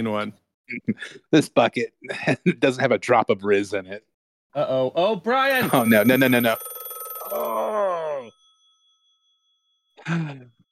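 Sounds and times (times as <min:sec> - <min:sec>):
speech: 0:00.0 - 0:07.9, 0:10.0 - 0:10.5
telephone bell ringing: 0:05.5 - 0:10.6.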